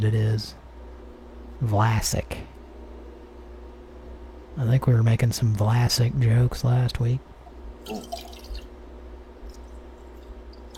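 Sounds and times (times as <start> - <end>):
speech: 0.0 - 0.6, 1.6 - 2.6, 4.6 - 8.3
dripping: 7.5 - 8.7, 9.5 - 10.7
running water: 7.8 - 8.7, 9.5 - 10.7.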